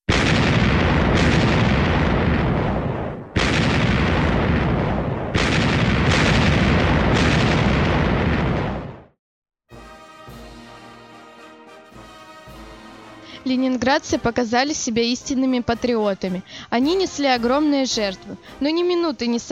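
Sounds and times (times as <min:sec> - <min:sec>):
artillery salute volleys firing in Leningrad in honour of the troops: 0:00.0 - 0:09.1
speech: 0:13.5 - 0:19.4.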